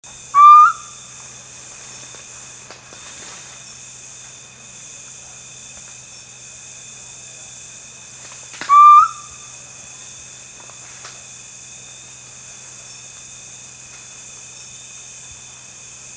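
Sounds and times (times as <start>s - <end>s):
owl calling: 0.3s - 1.0s, 8.6s - 9.5s.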